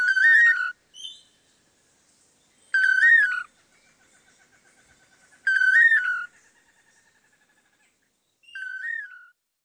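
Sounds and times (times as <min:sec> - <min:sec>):
duetting pair of long-tailed manakins singing toledo song: 0:00.0 - 0:01.5, 0:02.5 - 0:04.0, 0:05.4 - 0:06.6, 0:08.4 - 0:09.4.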